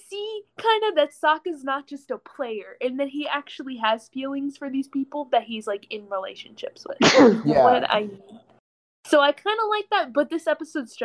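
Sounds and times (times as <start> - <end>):
speech: 0.6 - 8.5, 9.1 - 11.0
loud sneeze: 7.0 - 7.8.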